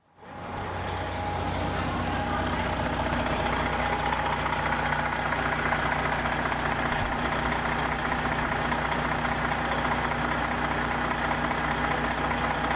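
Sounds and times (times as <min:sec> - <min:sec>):
bus engines idling: 0:00.0 - 0:12.7.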